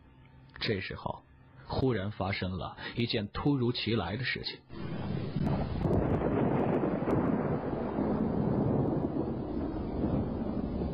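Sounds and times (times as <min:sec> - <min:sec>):
speech: 0:00.6 - 0:05.0
deep muffled thunder rumbling: 0:04.7 - 0:10.9.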